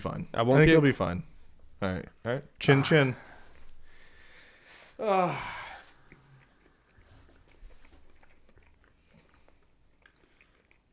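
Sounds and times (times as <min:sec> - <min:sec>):
speech: 0:00.0 - 0:03.3, 0:05.0 - 0:05.6
people chewing and biting food, wet and crunchy: 0:05.8 - 0:10.9.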